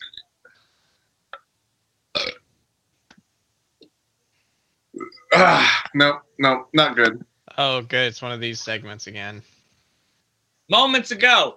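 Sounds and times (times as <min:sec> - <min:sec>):
strained burp: 0:02.1 - 0:02.4, 0:05.0 - 0:06.0
small clicks and mouth noises: 0:05.0 - 0:07.4
speech: 0:05.4 - 0:09.5, 0:10.7 - 0:11.5.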